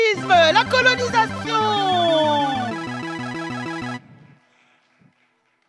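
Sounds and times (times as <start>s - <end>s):
loud electronic mobile phone ringtone with two-note melody: 0.2s - 4.1s.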